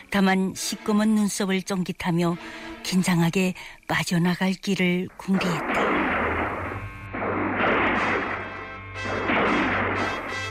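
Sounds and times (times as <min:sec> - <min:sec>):
steady low hum: 0:00.0 - 0:10.4
speech: 0:00.1 - 0:06.0
loud rough bursts of gunfire: 0:05.4 - 0:10.4.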